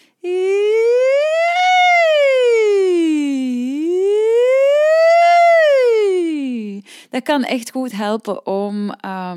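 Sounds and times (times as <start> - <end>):
single voice singing a siren-like glide: 0.2 - 6.8
speech: 7.2 - 9.3.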